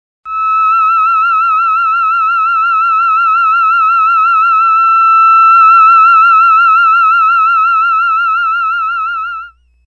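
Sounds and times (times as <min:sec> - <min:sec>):
theremin playing the note E: 0:00.3 - 0:09.6.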